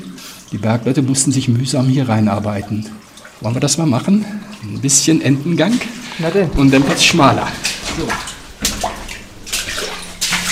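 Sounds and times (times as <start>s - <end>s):
speech: 0.5s - 8.3s
wading through water in rubber boots in a narrow old mine passage: 5.7s - 10.4s.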